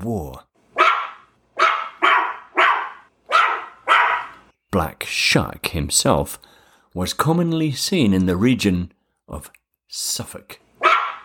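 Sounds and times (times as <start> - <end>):
speech: 0.0 - 0.5, 4.7 - 10.6
dog barking: 0.8 - 4.4, 10.8 - 11.2.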